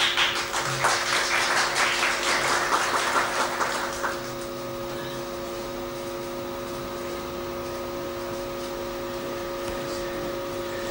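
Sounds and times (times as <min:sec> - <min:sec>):
audience applauding: 0:00.0 - 0:04.4
faint steady hum: 0:00.0 - 0:10.8.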